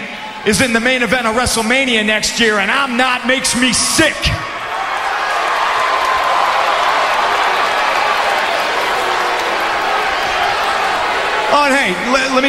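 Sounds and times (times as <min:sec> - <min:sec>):
large arena crowd roaring and cheering: 0:00.0 - 0:12.4
speech: 0:00.4 - 0:04.5, 0:11.5 - 0:12.4
arena crowd applause: 0:04.7 - 0:11.5.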